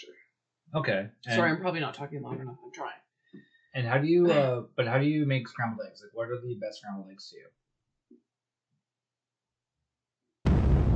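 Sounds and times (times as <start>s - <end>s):
speech: 0.7s - 7.6s
cannon blast: 10.5s - 10.9s.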